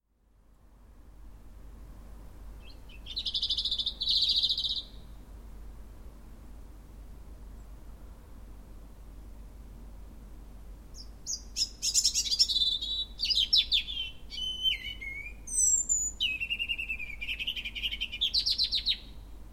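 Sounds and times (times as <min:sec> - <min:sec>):
European robin: 0:02.6 - 0:05.2, 0:10.9 - 0:19.2.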